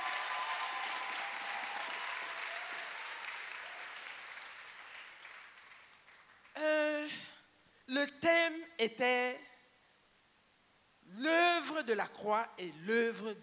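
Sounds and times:
congregation clapping at a prayer ministers' gathering: 0.0s - 6.6s
speech: 7.9s - 9.5s, 11.1s - 13.4s.

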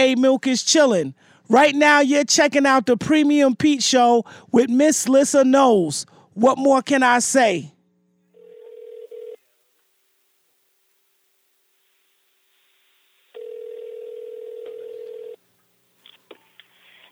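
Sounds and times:
speech: 0.0s - 7.8s
telephone ringing heard down a phone line: 8.3s - 9.5s, 13.4s - 15.4s
quiet phone line hiss: 8.3s - 17.0s
faint clicks: 15.6s - 17.0s.

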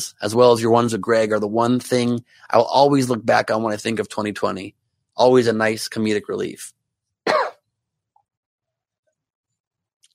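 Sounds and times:
speech: 0.0s - 7.4s
single short cough: 7.3s - 7.6s.

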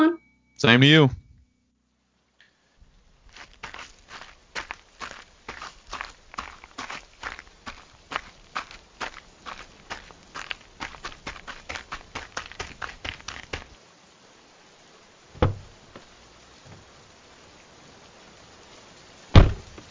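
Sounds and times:
speech: 0.6s - 1.2s
footsteps walking toward a door: 3.3s - 13.8s.

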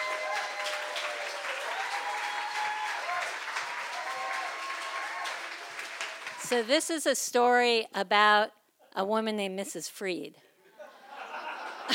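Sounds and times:
cheers and whoops: 0.0s - 6.5s
room full of people applauding: 0.0s - 6.7s
speech: 6.5s - 10.4s
laughter: 10.6s - 11.9s.

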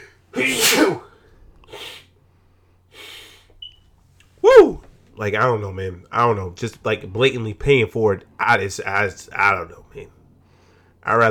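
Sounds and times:
person sneezing: 0.0s - 2.1s
soft short breathy exhalations: 0.9s - 3.6s
speech: 5.2s - 10.2s, 11.0s - 11.2s.

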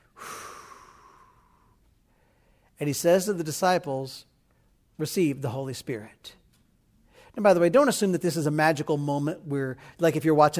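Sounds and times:
person exhaling a long breathy breath: 0.0s - 2.7s
speech: 2.8s - 4.3s, 5.0s - 6.4s, 7.4s - 10.5s.

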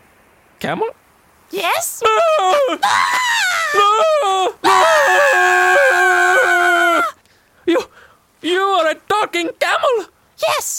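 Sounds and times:
speech: 0.6s - 6.6s, 7.7s - 10.7s
people screaming: 2.0s - 7.2s.

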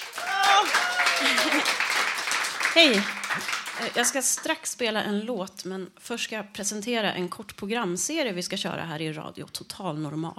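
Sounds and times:
audience voices whooping and calling out: 0.0s - 2.0s
radio studio audience applause: 0.0s - 4.5s
laughter: 0.4s - 1.9s
speech: 2.8s - 10.3s.

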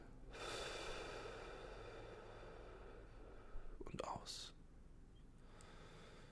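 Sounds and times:
long deep breath in through the nose during a guided breathing exercise: 0.3s - 3.8s, 5.4s - 6.2s
speech: 4.2s - 4.5s.

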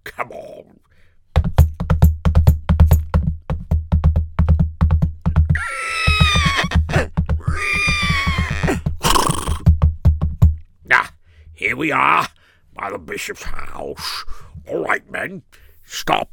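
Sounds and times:
fast thudding hoofbeats: 1.4s - 10.5s
horses neighing: 5.5s - 9.7s
speech: 11.8s - 16.3s.

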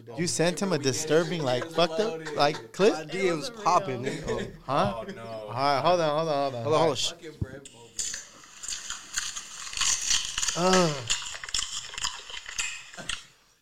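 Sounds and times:
speech: 0.1s - 8.1s, 10.6s - 11.2s
laughter: 0.2s - 6.5s
crinkly crackling textures: 8.0s - 13.4s
wet smacking open-mouth chewing: 8.0s - 13.4s.

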